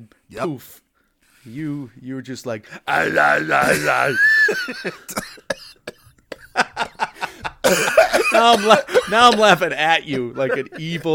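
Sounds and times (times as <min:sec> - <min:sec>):
speech: 0:00.0 - 0:00.8, 0:01.4 - 0:05.9, 0:07.7 - 0:11.1
laughter: 0:03.0 - 0:05.1, 0:06.3 - 0:11.1
person coughing: 0:03.6 - 0:06.6, 0:07.6 - 0:09.6.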